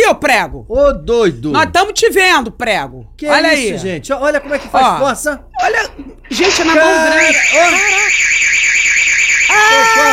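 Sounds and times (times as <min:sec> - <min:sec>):
speech: 0:00.1 - 0:08.7, 0:09.5 - 0:10.1
electronic alarm going off during a break-in attempt: 0:06.3 - 0:10.1.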